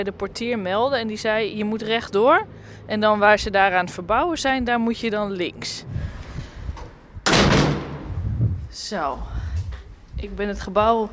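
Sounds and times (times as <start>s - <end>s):
speech: 0.0s - 6.2s, 8.7s - 9.4s, 10.2s - 11.1s
noise: 0.0s - 11.1s
wooden building entrance door shutting: 6.8s - 8.2s.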